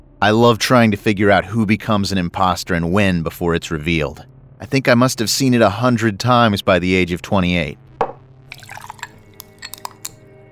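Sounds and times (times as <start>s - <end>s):
speech: 0.2s - 7.8s
glass clinking: 8.0s - 10.2s
whiskey pouring and splashing into a glass: 8.0s - 10.2s.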